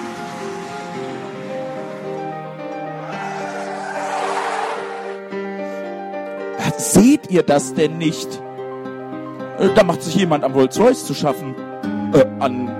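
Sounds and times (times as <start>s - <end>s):
rushing, rumbling roar of a braking car: 3.0s - 5.2s
car tires squealing while braking hard: 3.0s - 5.3s
speech: 6.8s - 8.4s, 9.6s - 12.7s.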